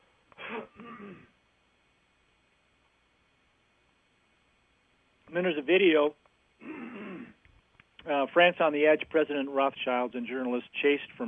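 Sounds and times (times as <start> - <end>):
throat clearing: 0.4 - 1.3, 6.6 - 7.4
speech: 0.5 - 1.3, 5.3 - 6.9, 8.0 - 11.2.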